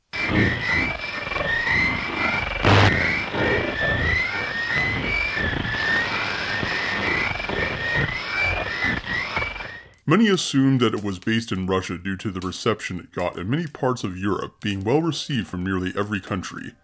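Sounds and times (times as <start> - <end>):
radio static: 0.0 - 9.9
whale-like droning radio transmission tone: 0.0 - 9.9
crackling burst of radio static: 0.0 - 16.4
speech: 10.1 - 16.8.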